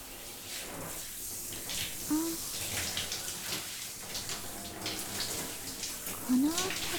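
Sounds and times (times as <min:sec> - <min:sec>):
warm running water rinsing styling product out of hair: 0:00.0 - 0:06.9.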